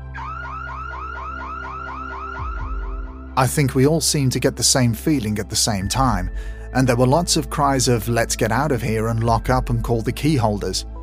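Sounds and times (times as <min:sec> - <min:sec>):
car alarm warbling: 0:00.1 - 0:03.3
speech: 0:03.4 - 0:10.9.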